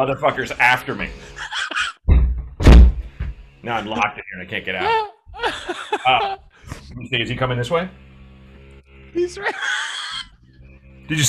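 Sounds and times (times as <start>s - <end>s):
speech: 0.0s - 1.6s, 3.6s - 8.0s, 9.2s - 9.8s, 11.1s - 11.2s
laughter: 0.7s - 2.0s, 3.8s - 6.9s, 9.2s - 10.3s
door shutting with a thunk: 2.1s - 3.4s.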